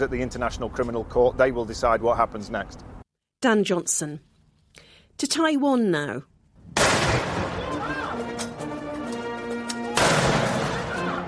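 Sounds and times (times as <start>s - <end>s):
speech: 0.0s - 6.3s
ceremonial cannons fired at a presidential inauguration ceremony in Taipei: 6.6s - 8.4s, 10.0s - 11.2s.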